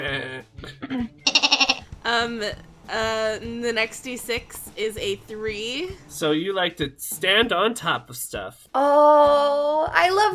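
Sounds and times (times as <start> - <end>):
person imitating goat bleats: 0.0 - 1.9
speech: 2.1 - 10.3.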